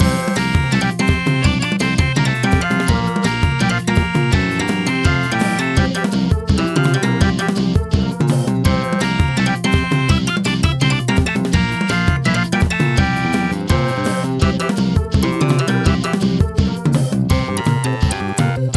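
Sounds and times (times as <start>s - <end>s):
fast music: 0.0s - 18.7s.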